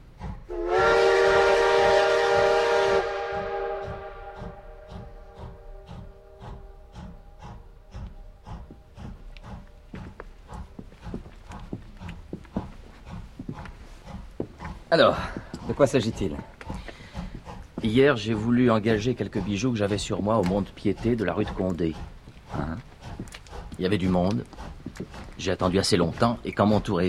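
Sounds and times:
steam train chuffing and clanking at a small station platform: 0.0s - 27.0s
train steam whistle at a small station platform: 0.5s - 6.5s
speech: 15.0s - 16.6s, 17.8s - 22.6s, 23.8s - 27.0s.

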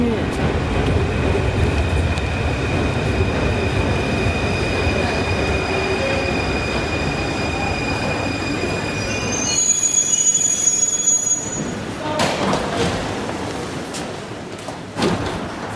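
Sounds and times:
metro train rolling in with a loud rumble: 0.0s - 15.7s
metro train wheels squealing while braking: 4.7s - 11.8s.

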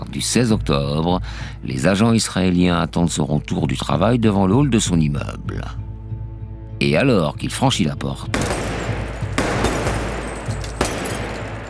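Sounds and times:
low rumbling background: 0.0s - 11.6s
speech: 0.1s - 5.8s, 6.8s - 8.6s
9 mm Beretta pistol gunshots: 8.3s - 11.6s.

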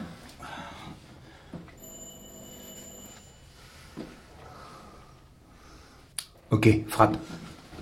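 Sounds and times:
doorbell ringing with a steady buzzing tone: 1.8s - 3.6s
speech: 6.5s - 7.5s.

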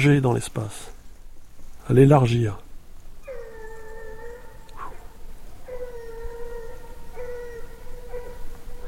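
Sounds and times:
speech: 0.0s - 1.0s, 1.9s - 2.7s
steady low hum: 0.0s - 8.8s
dog howling: 3.2s - 8.8s.

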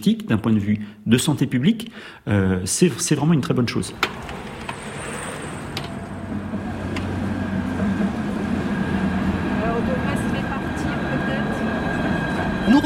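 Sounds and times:
speech: 0.0s - 4.4s
tram humming and rumbling at a platform: 3.9s - 12.8s.

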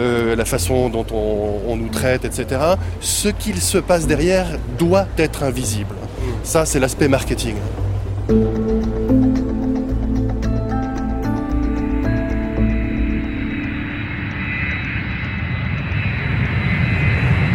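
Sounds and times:
speech: 0.3s - 8.8s
jet airliner taking off from airport tarmac: 6.0s - 17.5s.

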